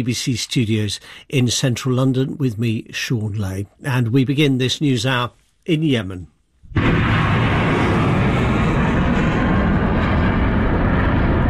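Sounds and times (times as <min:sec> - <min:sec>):
speech: 0:00.0 - 0:06.9
missiles being fired on a port city: 0:06.7 - 0:11.4.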